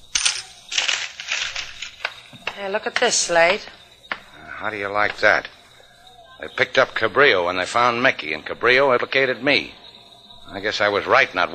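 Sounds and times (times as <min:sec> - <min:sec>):
newspaper crackling while being unfolded: 0:00.0 - 0:04.2
speech: 0:02.6 - 0:03.8, 0:04.6 - 0:05.6, 0:06.4 - 0:09.8, 0:10.5 - 0:11.5.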